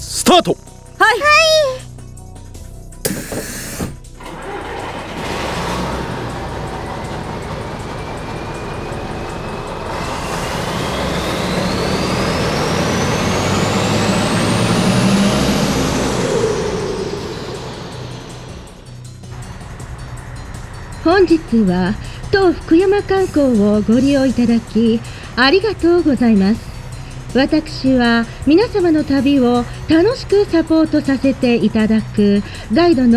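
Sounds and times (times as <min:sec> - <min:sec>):
speech: 0:00.4 - 0:01.8, 0:21.3 - 0:26.7, 0:27.3 - 0:33.1
sightseeing tour bus engine rumbling and whining: 0:02.6 - 0:33.1
tour bus air brakes hissing: 0:03.0 - 0:06.0, 0:08.4 - 0:13.0.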